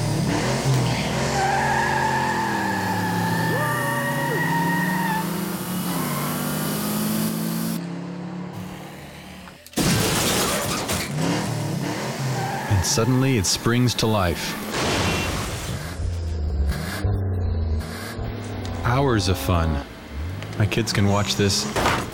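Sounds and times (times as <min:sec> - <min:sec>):
racing car sound effects roaring: 0:00.0 - 0:09.7, 0:10.8 - 0:21.8
racing car tire squeals: 0:00.9 - 0:06.7, 0:12.2 - 0:19.6
speech: 0:12.9 - 0:14.8, 0:19.0 - 0:19.9, 0:20.6 - 0:22.0
crashing spraying noise: 0:14.7 - 0:16.0.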